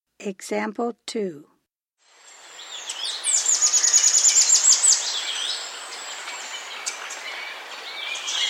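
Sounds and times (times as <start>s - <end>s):
speech: 0.2s - 1.5s
birds chirping softly: 2.2s - 8.4s
Russet antshrike calling in South America: 2.5s - 8.4s.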